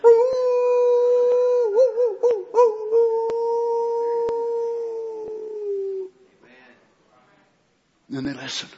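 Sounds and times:
wolf howling after a storm: 0:00.0 - 0:06.1
speech: 0:08.2 - 0:08.7.

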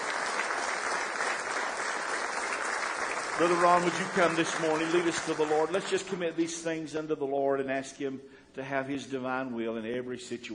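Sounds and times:
church congregation clapping hands in praise: 0:00.0 - 0:06.7
speech: 0:03.4 - 0:10.5.

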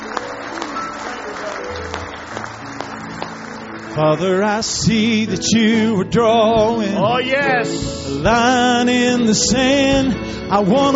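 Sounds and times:
crowd of many hands applauding: 0:00.0 - 0:04.9
speech: 0:04.0 - 0:10.9.

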